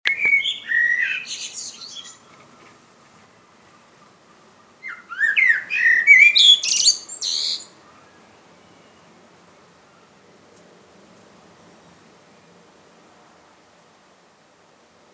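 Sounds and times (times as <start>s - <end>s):
common blackbird Turdus merula singing fluty whistles and squeaky twitter: 0.1s - 9.2s, 10.9s - 12.6s.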